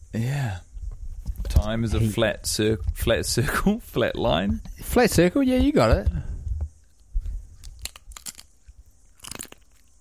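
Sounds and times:
speech: 0:00.1 - 0:00.7, 0:01.7 - 0:06.3
wet crunching and chewing mouth sounds from amateur ASMR: 0:06.9 - 0:09.9.

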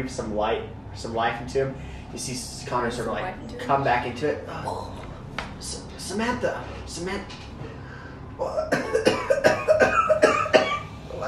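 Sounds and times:
speech: 0:00.0 - 0:05.0, 0:05.6 - 0:07.8, 0:08.4 - 0:09.6
harsh coughing fit: 0:08.4 - 0:10.9.

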